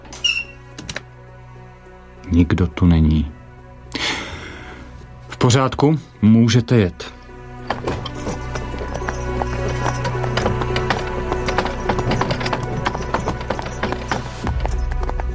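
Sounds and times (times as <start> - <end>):
speech: 2.3 - 3.4, 5.4 - 7.2
horse hooves clip-clopping on stones pulling a wagon: 7.7 - 15.3
wagon wheels rolling over stones: 7.7 - 15.3.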